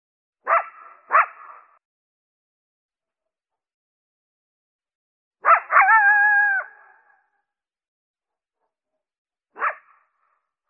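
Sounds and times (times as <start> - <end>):
coyote bark: 0.4 - 1.8, 5.4 - 7.2, 9.5 - 10.1.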